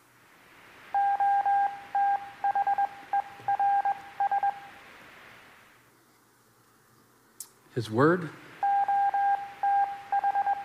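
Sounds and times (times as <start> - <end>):
Morse code beeps from a steady electronic tone: 1.0 - 4.7, 8.6 - 10.6
speech: 7.8 - 8.4.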